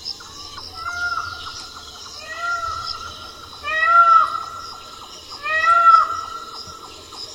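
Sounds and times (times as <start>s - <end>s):
Indian peafowl giving loud nasal arched wailing calls: 0.7s - 6.6s.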